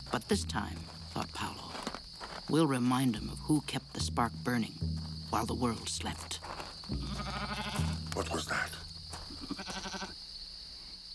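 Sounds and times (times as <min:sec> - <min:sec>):
steady high insect-like hum: 0:00.0 - 0:11.1
speech: 0:00.1 - 0:01.7, 0:02.5 - 0:07.5, 0:08.2 - 0:08.8
goat bleating: 0:06.9 - 0:08.6, 0:09.3 - 0:10.2.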